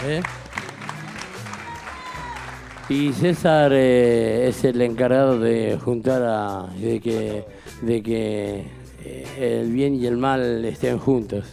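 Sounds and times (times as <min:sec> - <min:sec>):
speech: 0:00.0 - 0:00.4, 0:02.9 - 0:11.5
audience applause: 0:00.0 - 0:03.8.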